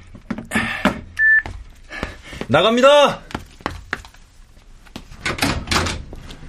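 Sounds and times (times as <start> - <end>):
telephone keypad dialing tones: 1.2 - 1.5
speech: 2.5 - 3.3.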